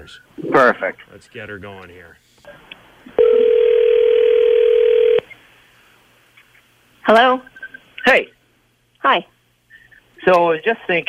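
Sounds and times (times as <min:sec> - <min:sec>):
speech: 0:00.0 - 0:02.6, 0:07.1 - 0:08.4, 0:09.0 - 0:09.3, 0:10.2 - 0:11.0
telephone line tone: 0:03.2 - 0:05.2.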